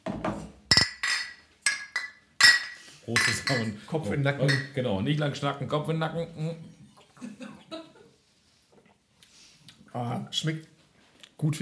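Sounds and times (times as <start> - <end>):
bottles clinking together in a toast: 0.7 - 3.8, 4.4 - 4.8
speech: 3.1 - 6.8, 10.0 - 10.7, 11.4 - 11.5.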